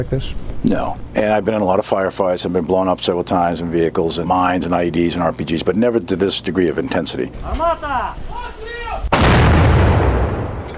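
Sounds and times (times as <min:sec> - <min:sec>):
speech: 0:00.0 - 0:08.6
artillery fire on the front lines, Ukrainian troops shelling Russian positions: 0:09.1 - 0:10.7.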